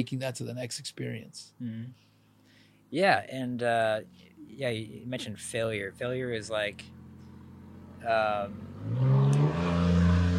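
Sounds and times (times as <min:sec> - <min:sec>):
speech: 0:00.0 - 0:02.1, 0:02.9 - 0:07.0, 0:08.0 - 0:09.2
truck driving past: 0:06.8 - 0:10.3.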